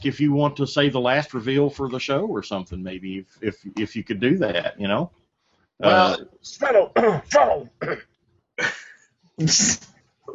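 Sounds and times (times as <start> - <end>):
speech: 0.0 - 5.2, 5.8 - 8.8, 9.4 - 10.3
harsh raspy coughs: 7.0 - 8.0, 8.6 - 9.8.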